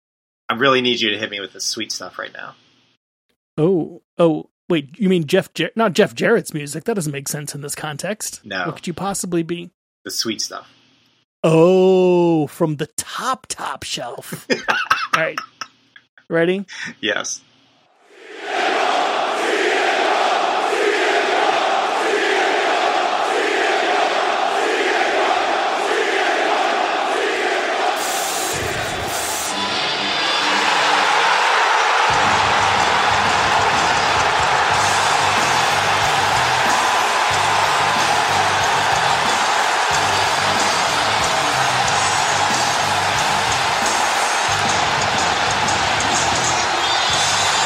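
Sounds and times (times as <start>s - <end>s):
speech: 0.6s - 2.6s, 3.6s - 10.8s, 11.4s - 15.5s, 16.3s - 17.5s
huge arena crowd of 16,000 roaring and cheering: 18.1s - 47.6s.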